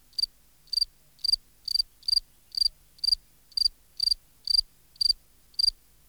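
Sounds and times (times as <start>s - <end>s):
Gryllus campestris field cricket chirping: 0.2s - 5.7s.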